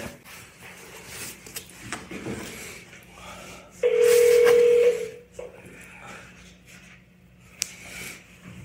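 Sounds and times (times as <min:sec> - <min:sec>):
faint hum: 0:00.1 - 0:08.6
elevator emergency telephone dialing tone: 0:03.8 - 0:05.3.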